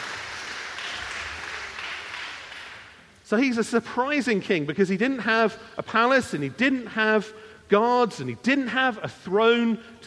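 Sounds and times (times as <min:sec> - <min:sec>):
audience applause: 0:00.0 - 0:03.0
speech: 0:03.3 - 0:10.0.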